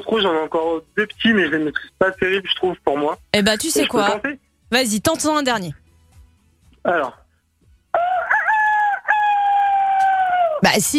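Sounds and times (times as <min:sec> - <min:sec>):
speech: 0:00.0 - 0:05.8, 0:06.8 - 0:07.2, 0:10.6 - 0:10.9
voice imitating a rooster crowing: 0:07.9 - 0:10.6.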